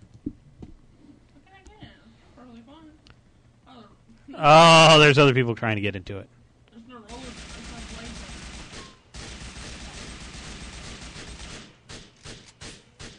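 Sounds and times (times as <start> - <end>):
speech: 4.3 - 6.4
rapid gunfire in a video game: 7.1 - 13.1.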